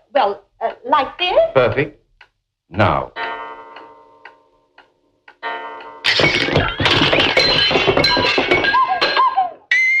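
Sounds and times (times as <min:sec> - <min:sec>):
speech: 0:00.1 - 0:02.0, 0:02.7 - 0:03.3, 0:06.3 - 0:06.8
eight-day clock ticking: 0:00.5 - 0:06.0
crashing clatter of smashing wood and jangling metal: 0:06.1 - 0:09.3.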